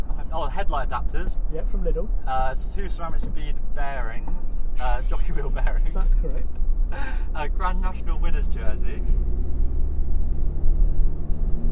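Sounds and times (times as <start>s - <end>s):
car engine rumble on an open highway: 0.0s - 11.7s
road noise from a car driving on an open highway: 0.0s - 11.7s
speech: 0.5s - 9.5s.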